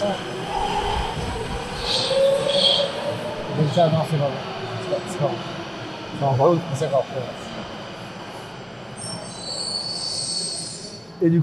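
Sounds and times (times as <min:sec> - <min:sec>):
metro train wheels squealing: 0:00.0 - 0:04.3, 0:08.8 - 0:11.3
voices: 0:00.0 - 0:09.2
metro train rumbling: 0:00.0 - 0:11.4
speech: 0:03.7 - 0:07.8, 0:11.2 - 0:11.4.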